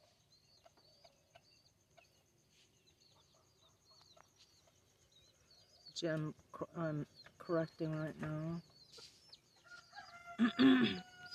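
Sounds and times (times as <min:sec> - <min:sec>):
faint chicken clucking: 0:00.0 - 0:11.3
speech: 0:06.0 - 0:09.1, 0:10.4 - 0:11.1
rooster crowing in the morning: 0:09.6 - 0:11.3.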